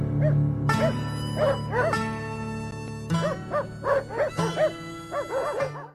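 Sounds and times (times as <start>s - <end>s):
dogs barking: 0.2s - 2.1s, 3.2s - 5.9s.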